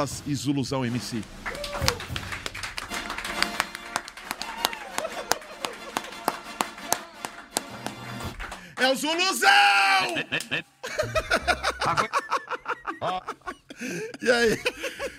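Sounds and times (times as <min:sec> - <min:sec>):
speech: 0:00.0 - 0:02.3, 0:08.8 - 0:12.1, 0:13.0 - 0:15.1
audience applause welcoming guests: 0:00.9 - 0:12.0
laughter: 0:01.4 - 0:07.4, 0:09.8 - 0:15.1.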